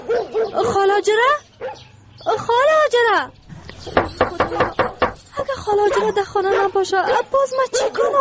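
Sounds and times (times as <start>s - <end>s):
tied-up dog barking: 0.0s - 0.7s, 1.6s - 2.0s, 5.8s - 8.1s
tied-up dog yelping: 0.0s - 0.8s, 1.6s - 2.0s, 4.0s - 8.1s
speech: 0.6s - 8.1s.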